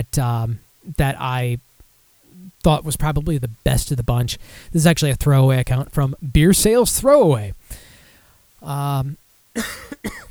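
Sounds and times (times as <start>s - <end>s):
speech: 0.0s - 1.7s, 2.6s - 7.8s, 8.6s - 10.2s
cough from a dry throat: 9.6s - 10.2s
throat clearing from a dry throat: 9.6s - 10.2s.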